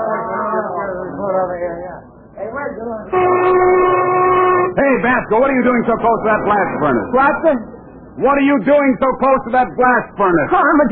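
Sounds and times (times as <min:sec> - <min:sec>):
voices chattering: 0:00.0 - 0:10.9
speech: 0:01.6 - 0:03.8, 0:04.8 - 0:10.9
factory lunch whistle blowing: 0:03.1 - 0:04.8.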